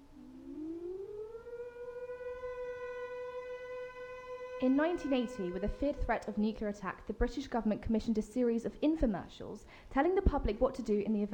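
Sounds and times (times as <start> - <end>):
civil defence siren sounding the all-clear steady tone: 0.0 - 6.6
speech: 4.6 - 11.3.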